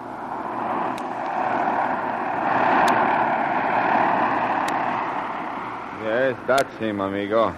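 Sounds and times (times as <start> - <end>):
broad rush of wind: 0.0 - 7.5
propeller plane engine droning while gliding in to land: 0.0 - 7.5
speech: 6.4 - 7.5.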